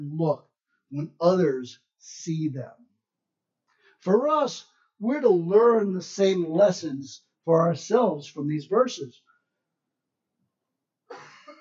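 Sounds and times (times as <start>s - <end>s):
speech: 0.0s - 2.8s, 4.0s - 9.2s
man clearing throat during a religious talk: 11.1s - 11.6s.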